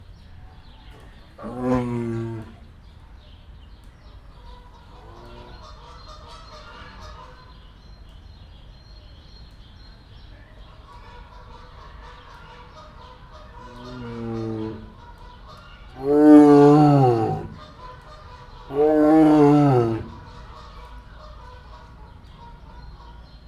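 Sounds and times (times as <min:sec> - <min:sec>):
Siberian tiger in Debrecen zoo: 0:00.7 - 0:03.0, 0:04.6 - 0:06.1, 0:12.9 - 0:20.6.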